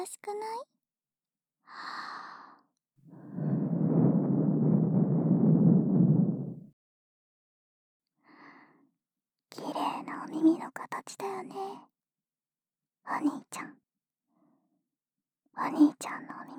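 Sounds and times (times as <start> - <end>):
speech: 0.0 - 0.8, 1.7 - 2.2, 10.3 - 11.9, 13.0 - 13.8, 15.6 - 16.5
soft breath blown into the ear: 3.1 - 6.6.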